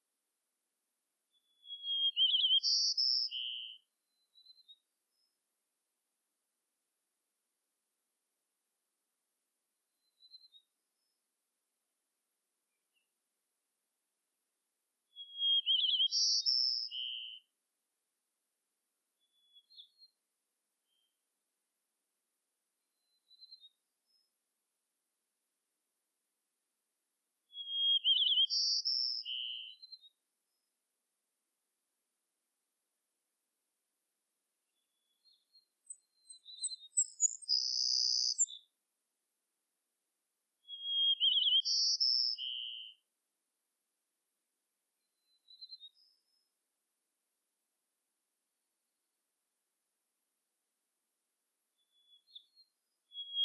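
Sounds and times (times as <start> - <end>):
White-crowned Sparrow Zonotrichia leucophrys gambelii: 1.6 - 3.8, 15.2 - 17.4, 27.6 - 29.8, 35.9 - 38.6, 40.7 - 43.0, 53.1 - 53.4.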